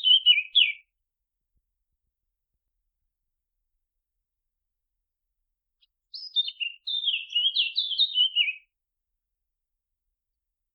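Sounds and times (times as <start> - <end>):
Eurasian blackcap song: 0.0 - 0.9, 5.8 - 8.8.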